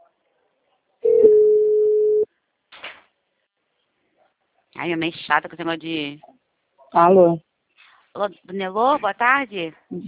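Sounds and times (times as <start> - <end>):
telephone ringing tone while calling a client: 1.0 - 2.3
speech: 4.8 - 6.3, 6.9 - 7.5, 8.2 - 10.0.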